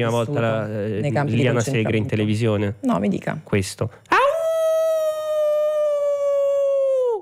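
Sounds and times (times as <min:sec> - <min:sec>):
speech: 0:00.0 - 0:04.2
person howling in imitation of a dog: 0:04.1 - 0:07.2.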